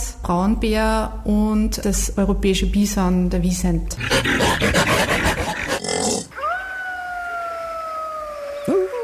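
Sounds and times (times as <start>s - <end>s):
speech: 0.3s - 5.4s
rough noisy rustling and grunting: 4.0s - 6.3s
Siberian wolf howling: 4.0s - 8.6s.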